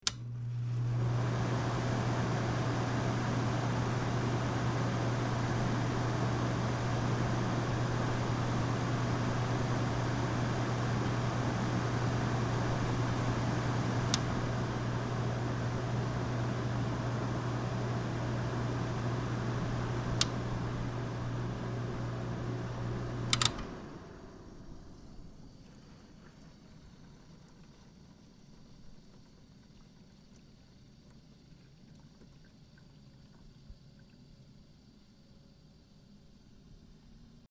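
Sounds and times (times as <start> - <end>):
air conditioner: 0.0 - 26.4.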